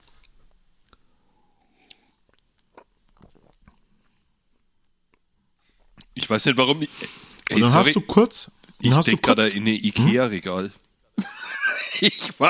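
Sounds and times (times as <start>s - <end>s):
mouth smacks and clicks: 1.8s - 3.8s
speech: 6.2s - 10.8s, 12.0s - 12.4s
laughter: 11.2s - 12.4s.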